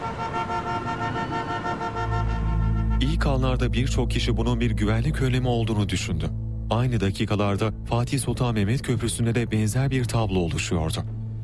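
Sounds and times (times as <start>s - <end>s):
car horns honking in a stalled traffic jam on a bridge: 0.0s - 3.3s
low engine rumble: 0.0s - 11.4s
speech: 3.0s - 11.1s.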